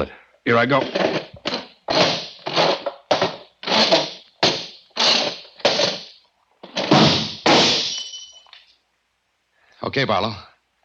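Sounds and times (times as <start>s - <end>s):
speech: 0.0s - 1.2s, 9.9s - 10.5s
occupied chair scraping and bumping across a hard floor: 0.7s - 7.9s
drinking glass knocked off a table shattering on the floor: 6.9s - 8.6s.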